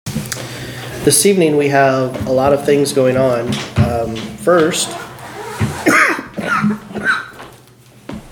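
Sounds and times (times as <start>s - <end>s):
speech: 1.0s - 5.1s
person coughing into a microphone: 5.8s - 7.2s.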